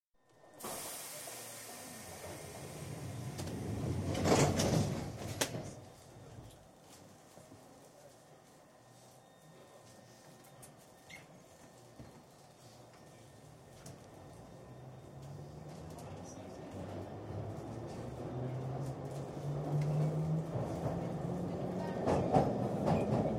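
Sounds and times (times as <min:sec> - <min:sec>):
London Underground train doors closing on the Victoria Line: 0:00.5 - 0:06.7, 0:14.6 - 0:23.3
London Underground train running on the Victoria Line, heard from interior: 0:00.6 - 0:23.3.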